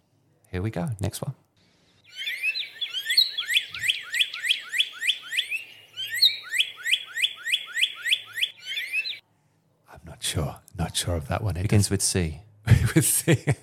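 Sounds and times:
speech: 0.5s - 1.4s, 10.3s - 13.6s
North American cardinal singing bright slurred whistles: 2.0s - 9.2s
laughter: 12.7s - 13.6s.

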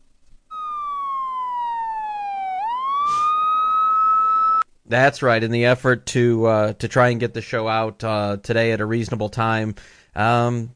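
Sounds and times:
siren sound effect wailing: 0.5s - 4.6s
brief noisy burst: 3.0s - 3.6s
speech: 4.9s - 10.7s.

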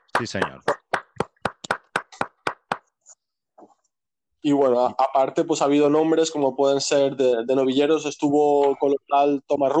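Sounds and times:
people clapping in applause for a doctor: 0.0s - 2.9s
speech: 0.2s - 0.8s, 4.4s - 9.7s.

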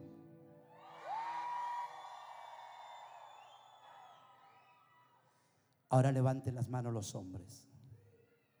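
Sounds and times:
women in audience shouting and cheering: 0.0s - 4.6s
sharp rising whoop: 0.7s - 3.3s
speech: 5.9s - 7.7s.

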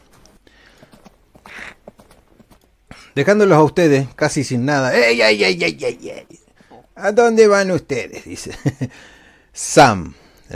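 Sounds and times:
horse hooves clip-clopping as horses pull a carriage away: 0.0s - 4.2s
speech: 3.2s - 6.4s, 7.0s - 10.5s
laughter: 8.1s - 8.9s.

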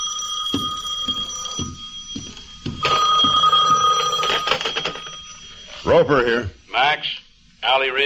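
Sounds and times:
old-style telephone bell ringing: 0.0s - 6.2s
speech: 5.9s - 8.0s.

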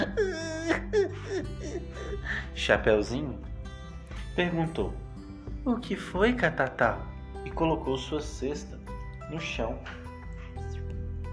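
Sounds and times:
voice imitating a character crying with wails and sobs: 0.0s - 2.3s
speech: 0.2s - 3.5s, 4.4s - 5.0s, 5.6s - 10.0s.

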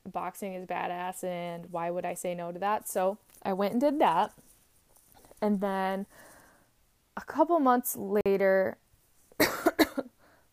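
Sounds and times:
speech: 0.2s - 4.5s, 5.4s - 6.3s, 7.2s - 8.8s
person coughing: 9.4s - 10.1s.

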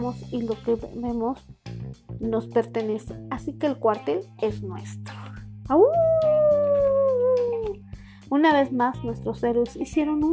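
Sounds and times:
speech: 0.1s - 5.1s, 5.7s - 6.1s, 8.3s - 10.3s
wolf howling: 5.8s - 7.8s.

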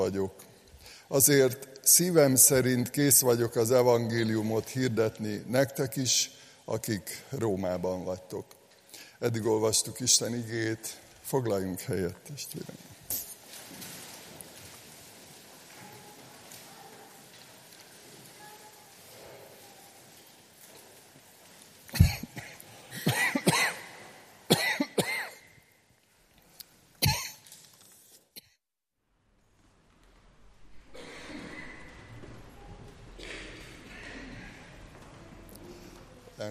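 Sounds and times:
speech: 0.0s - 8.6s, 9.2s - 13.2s
person coughing after swallowing the wrong way: 21.9s - 23.9s, 24.5s - 25.4s, 27.0s - 27.5s.

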